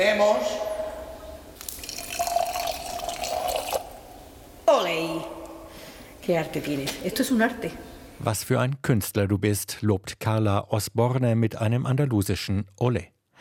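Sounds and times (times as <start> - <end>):
speech: 0.0 - 0.7, 6.3 - 13.4
sherry poured from a venencia into a glass: 1.6 - 4.4.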